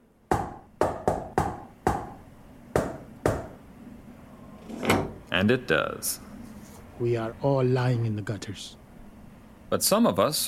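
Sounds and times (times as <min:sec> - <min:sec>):
rhythmic knock on a large metal back door: 0:00.3 - 0:03.6
eye-level slat in a metal door opening: 0:04.6 - 0:05.2
speech: 0:05.4 - 0:06.3, 0:07.0 - 0:08.8, 0:09.7 - 0:10.4.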